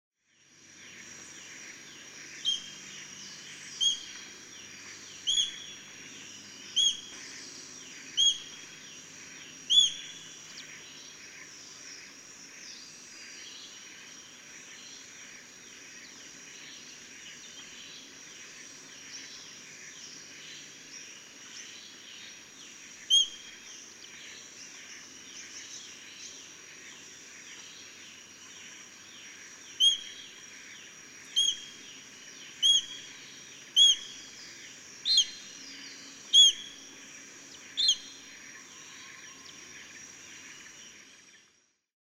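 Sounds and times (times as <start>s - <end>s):
Nisaetus nanus calling: 5.3s - 5.8s, 6.7s - 7.1s, 8.1s - 8.6s, 9.7s - 10.2s, 23.1s - 23.4s, 29.7s - 30.2s, 31.3s - 31.8s, 32.6s - 34.2s, 35.0s - 35.5s, 36.3s - 36.8s, 37.7s - 38.2s.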